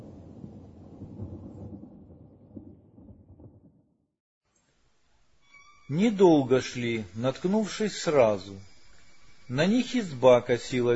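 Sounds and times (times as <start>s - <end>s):
deep rolling summer thunder rumbling: 0.0s - 4.0s
soft steady hiss: 4.5s - 10.9s
speech: 5.9s - 8.7s, 9.5s - 10.9s.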